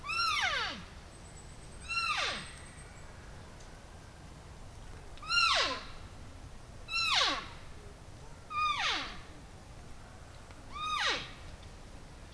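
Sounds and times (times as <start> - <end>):
faint background hiss: 0.0 - 12.3
female Siberian wapiti squealing: 1.9 - 2.5, 5.2 - 5.8, 6.9 - 7.5, 8.5 - 9.1, 10.7 - 11.3.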